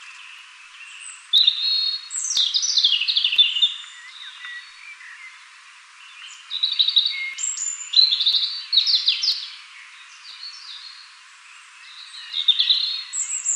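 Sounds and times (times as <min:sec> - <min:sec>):
European robin Erithacus rubecula singing thin whistles and slurred trills: 0:00.0 - 0:11.1, 0:11.8 - 0:13.5.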